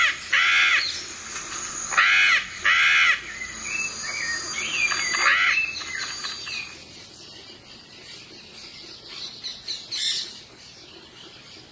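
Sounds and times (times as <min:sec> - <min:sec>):
Yellow-collared macaw screeching: 0:00.0 - 0:01.0, 0:01.7 - 0:06.4.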